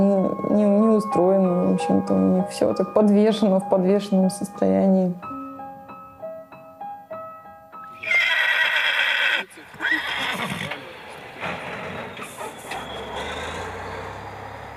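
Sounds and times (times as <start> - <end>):
speech: 0.0 - 5.4
horse whinny: 8.0 - 14.0.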